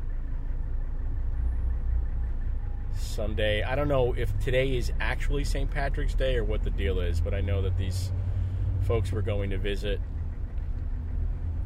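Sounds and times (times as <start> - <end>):
car engine idling in traffic: 0.0 - 11.6
speech: 3.2 - 10.1.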